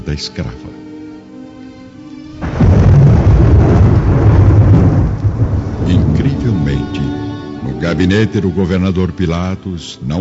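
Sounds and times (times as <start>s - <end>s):
speech: 0.1s - 0.7s, 7.9s - 10.1s
dense steady rain over a city: 2.4s - 7.6s
heavy thunder rumbling over a city: 2.4s - 7.6s.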